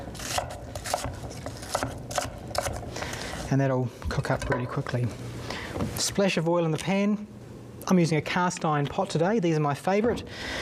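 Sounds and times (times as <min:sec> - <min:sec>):
knife chopping onion into chunks: 0:00.0 - 0:02.9
knife scraping between chopping strokes: 0:00.0 - 0:03.5
speech: 0:03.5 - 0:10.6.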